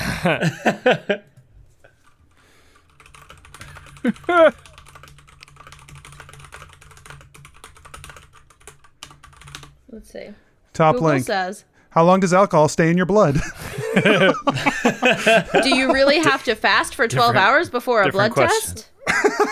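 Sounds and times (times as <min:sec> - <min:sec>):
laughter: 0:00.0 - 0:01.3, 0:04.0 - 0:04.6, 0:13.3 - 0:19.5
speech: 0:00.2 - 0:01.3, 0:04.0 - 0:04.7, 0:09.9 - 0:19.5
keyboard typing during a computer search: 0:01.2 - 0:09.8.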